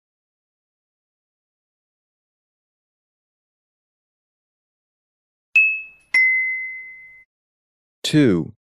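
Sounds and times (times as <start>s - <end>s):
bell ringing: 5.6s - 7.3s
speech: 8.1s - 8.6s.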